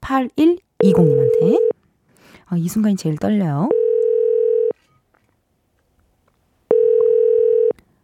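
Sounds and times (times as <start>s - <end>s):
speech: 0.1s - 1.8s, 2.5s - 3.8s
telephone ringback tone on an outgoing call: 0.8s - 1.7s, 3.7s - 4.8s, 6.7s - 7.8s.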